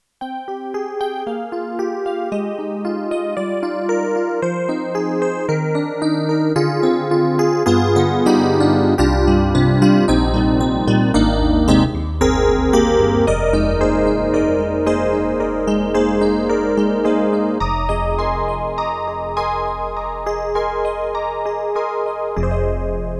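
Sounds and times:
Yamaha MU1000EX electric piano with chorus: 1.1s - 23.1s.

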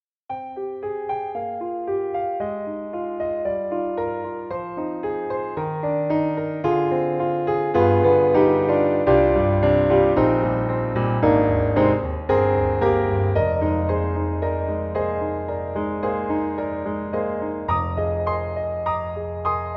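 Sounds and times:
mini grand piano with closed lid: 0.3s - 19.7s.

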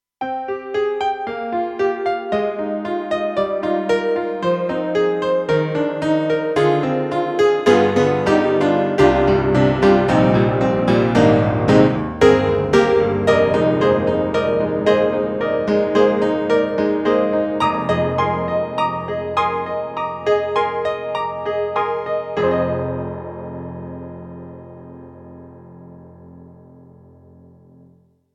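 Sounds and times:
Roland SC-8850 honky-tonk piano: 0.2s - 28.1s.

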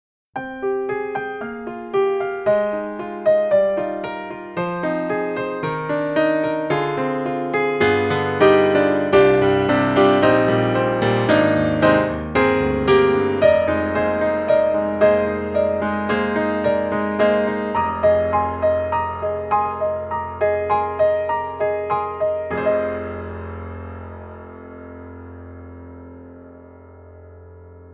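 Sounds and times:
piano recorded with close mic: 0.4s - 27.9s.

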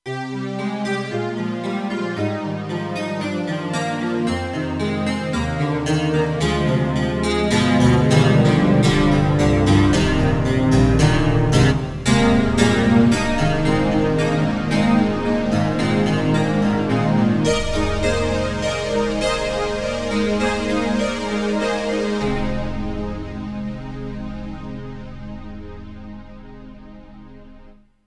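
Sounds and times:
Korg TR-Rack synthesizer chordwork: 0.0s - 27.8s.

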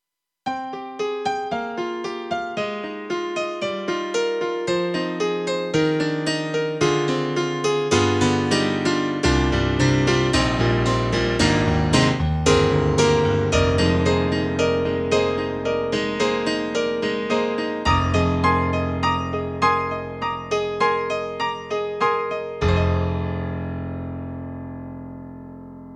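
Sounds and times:
thin bright grand piano sample: 0.5s - 25.9s.

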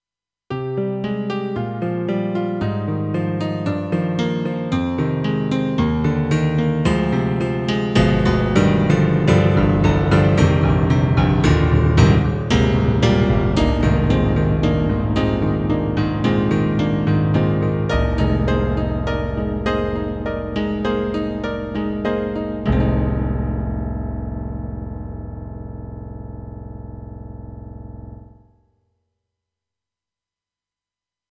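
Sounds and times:
synthesizer piano: 0.5s - 28.5s.

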